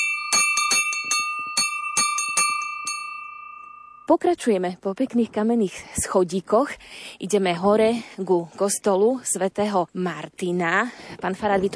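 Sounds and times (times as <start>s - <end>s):
small bell at a wayside shrine ringing: 0.0s - 4.1s
speech: 4.1s - 11.7s.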